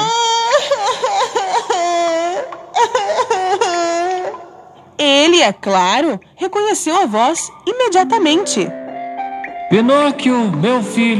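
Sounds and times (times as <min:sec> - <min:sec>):
young child crying and whimpering: 0:00.0 - 0:04.8
speech: 0:05.0 - 0:08.8, 0:09.7 - 0:11.1.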